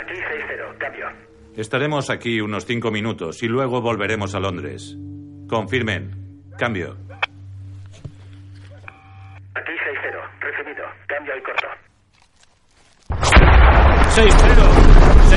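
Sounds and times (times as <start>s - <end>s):
crackly military radio chatter: 0.0s - 1.3s, 8.6s - 12.0s
steady low hum: 0.0s - 11.1s
speech: 0.1s - 7.1s, 14.2s - 14.8s
loud explosion with roaring rumbling burst: 13.1s - 15.3s.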